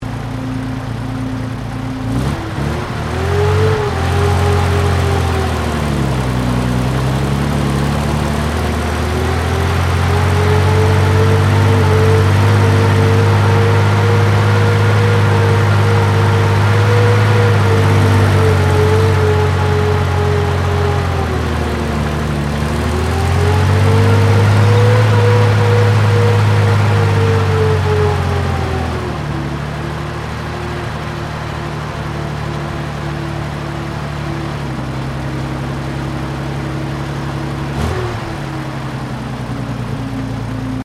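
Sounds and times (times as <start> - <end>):
British Centurion main battle tank engine starting and stopping: 0.0 - 40.8.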